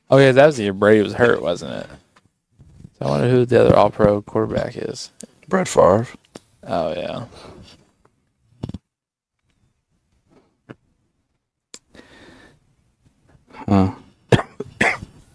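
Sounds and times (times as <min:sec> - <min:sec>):
speech: 0:00.1 - 0:02.0, 0:03.0 - 0:07.6, 0:13.6 - 0:14.0
person coughing with rough hacking coughs: 0:13.6 - 0:15.2.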